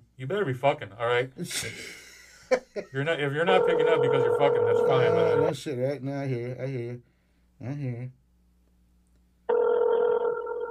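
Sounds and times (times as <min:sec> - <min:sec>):
speech: 0:00.2 - 0:08.2
phone ringing tone on an unanswered call: 0:03.5 - 0:05.6, 0:09.5 - 0:10.6.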